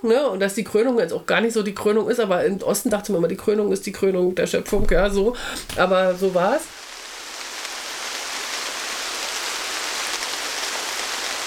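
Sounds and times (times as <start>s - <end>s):
speech: 0.0s - 6.8s
heavy rain pouring down striking surfaces: 4.7s - 11.4s.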